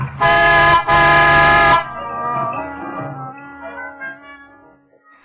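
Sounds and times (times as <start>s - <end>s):
car horn honking: 0.1s - 2.9s.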